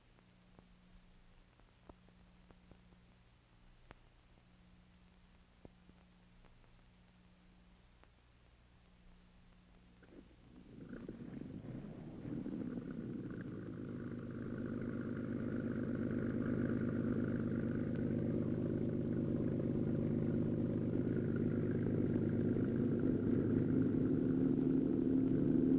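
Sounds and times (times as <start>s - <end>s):
canal tour boat engine rumbling in Holland: 10.1s - 25.7s.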